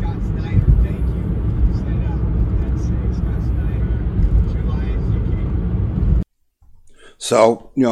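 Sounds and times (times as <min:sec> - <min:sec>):
line of trucks rolling past on the road with engine and tire rumble: 0:00.0 - 0:06.2
speech: 0:07.2 - 0:07.9.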